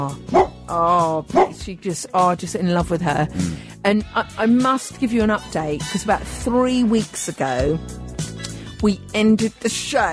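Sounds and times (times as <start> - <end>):
speech: 0.0 - 8.0, 8.8 - 10.1
Labrador barking and whining: 0.3 - 0.6, 1.3 - 1.6.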